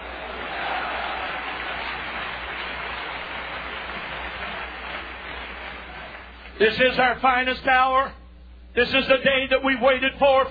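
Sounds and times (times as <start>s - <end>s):
large crowd clapping and cheering: 0.0s - 6.7s
speech: 6.6s - 8.2s, 8.8s - 10.4s.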